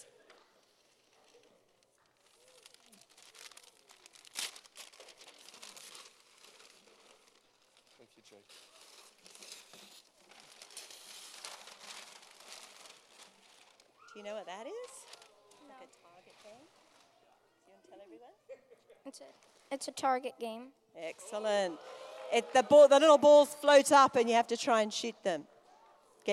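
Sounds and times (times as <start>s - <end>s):
gift wrapping paper crinkling and tearing as a present is unwrapped: 0.6s - 17.1s
speech: 14.2s - 14.8s, 18.8s - 25.6s.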